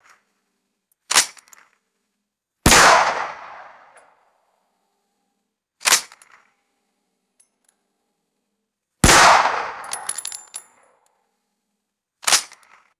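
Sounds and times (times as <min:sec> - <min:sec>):
AR-15 rifle shots echoing in a canyon: 0:02.7 - 0:04.0, 0:09.0 - 0:10.2.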